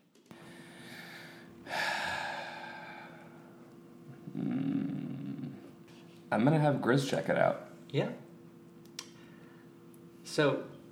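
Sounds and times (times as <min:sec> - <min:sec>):
slow soft breathing of someone asleep: 0:00.4 - 0:03.6
speech: 0:06.3 - 0:08.2, 0:10.4 - 0:10.7.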